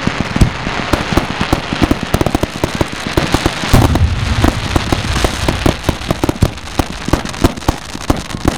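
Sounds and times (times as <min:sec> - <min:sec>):
popping: 0:00.1 - 0:08.5
explosion: 0:03.7 - 0:06.9.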